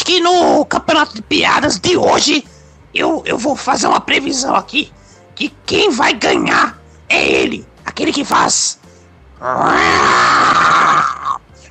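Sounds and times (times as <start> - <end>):
speech: 0.1 - 8.8, 9.4 - 11.1
person imitating a lion's roar: 9.4 - 11.4.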